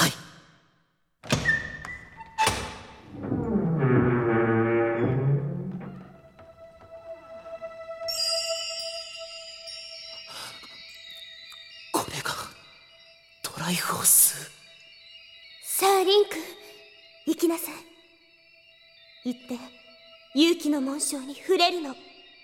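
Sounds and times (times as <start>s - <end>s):
large heavy door thunks: 1.2s - 6.9s
large door grinding rumble as it slides: 2.2s - 6.9s
sustained bright shimmering chime: 6.9s - 17.2s
speech: 20.4s - 22.1s.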